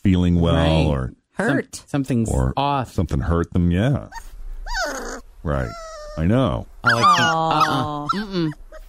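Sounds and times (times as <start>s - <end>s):
speech: 0.0s - 8.6s
dog whimpering: 4.1s - 8.8s.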